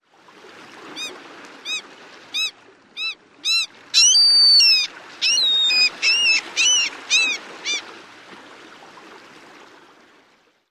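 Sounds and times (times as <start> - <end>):
Mew Gull squealing outburst: 1.7 - 7.8.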